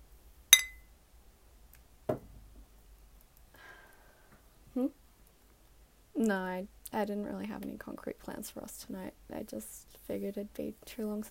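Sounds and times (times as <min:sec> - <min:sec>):
beer bottles clinking together in a toast: 0:00.6 - 0:00.8
speech: 0:04.8 - 0:05.0, 0:06.2 - 0:11.2.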